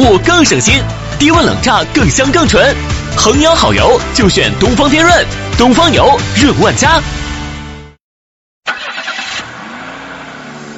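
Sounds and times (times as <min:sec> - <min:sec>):
speech: 0:00.1 - 0:07.2
car engine cranking to life and revving: 0:08.7 - 0:10.7.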